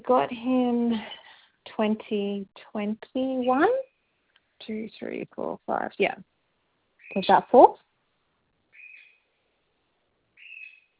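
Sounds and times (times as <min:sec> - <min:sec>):
speech: 0:00.0 - 0:01.2, 0:01.8 - 0:03.9, 0:04.6 - 0:06.3, 0:07.1 - 0:07.8
pet bird giving shrill whistling calls indoors: 0:08.8 - 0:09.2, 0:10.4 - 0:10.9.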